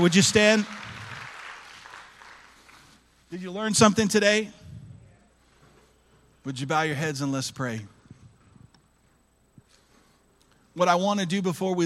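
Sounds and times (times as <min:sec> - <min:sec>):
speech: 0:00.0 - 0:00.9, 0:03.3 - 0:04.6, 0:06.4 - 0:08.0, 0:10.8 - 0:11.8
audience applause: 0:00.0 - 0:03.1.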